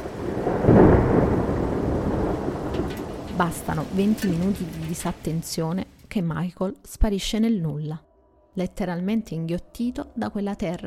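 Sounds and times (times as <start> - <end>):
steady hiss of rain: 0.0 - 6.1
thunder of an approaching storm over the Zuni Mountains, New Mexico: 0.0 - 6.1
speech: 3.4 - 10.8.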